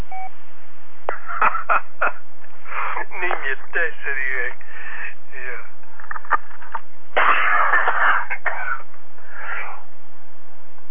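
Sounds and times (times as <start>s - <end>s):
chesty congested cough: 1.1s - 1.8s, 7.2s - 8.9s
speech: 1.4s - 2.3s, 3.5s - 4.6s.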